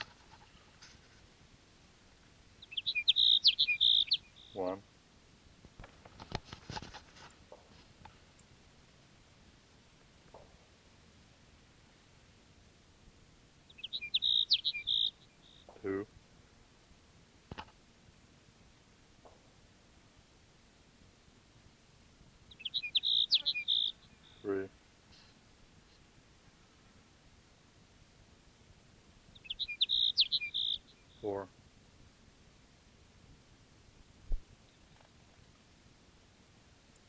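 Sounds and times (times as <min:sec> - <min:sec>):
sparrow song trills: 0:02.6 - 0:04.7, 0:13.7 - 0:16.0, 0:22.5 - 0:24.7, 0:29.3 - 0:31.4
faint clicks and ticks: 0:05.6 - 0:08.5.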